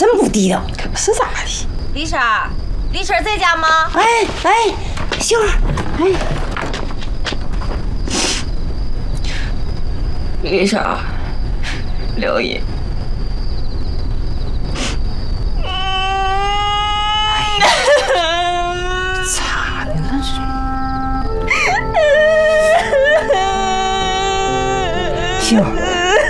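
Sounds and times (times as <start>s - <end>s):
speech: 0.0s - 6.5s, 10.4s - 11.1s, 12.2s - 12.7s, 25.5s - 25.8s
steady hiss: 0.0s - 26.2s
person crying and sobbing with wavering wails: 15.7s - 19.3s, 20.3s - 26.2s.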